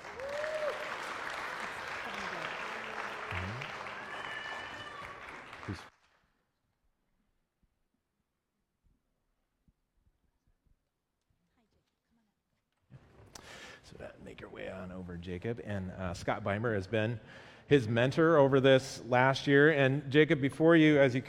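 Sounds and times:
audience applause: 0:00.0 - 0:05.9
person whooping: 0:00.1 - 0:00.9, 0:02.0 - 0:05.8
speech: 0:05.7 - 0:05.9, 0:14.4 - 0:21.2.

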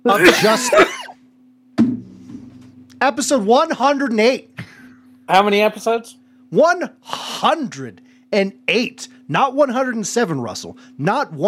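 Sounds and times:
speech: 0:00.0 - 0:01.0, 0:03.0 - 0:04.6, 0:05.3 - 0:11.4
laughter: 0:00.1 - 0:01.1
person coughing: 0:00.1 - 0:01.2.

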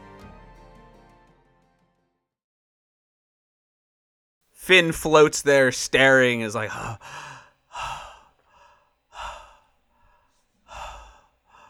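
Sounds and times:
speech: 0:04.7 - 0:08.0
heavy breathy panting: 0:06.6 - 0:11.6.

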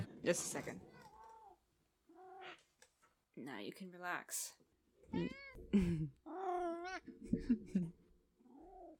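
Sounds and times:
speech: 0:00.3 - 0:00.8, 0:03.4 - 0:08.0
cat meowing: 0:00.9 - 0:02.7, 0:05.1 - 0:05.7, 0:06.3 - 0:07.1, 0:08.5 - 0:08.9.

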